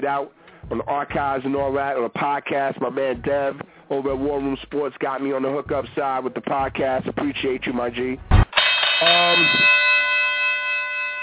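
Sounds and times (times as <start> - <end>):
speech: 0.0 - 8.4, 9.0 - 9.8
low murmur: 0.6 - 2.0, 2.9 - 4.9, 5.6 - 8.5
single bell ringing: 8.5 - 11.2.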